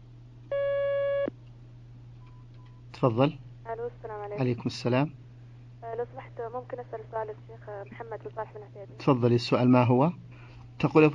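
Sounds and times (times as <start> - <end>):
faint low hum: 0.0 - 11.1
telephone line beep as next caller is connected: 0.5 - 1.3
speech: 3.0 - 5.2, 6.0 - 11.1.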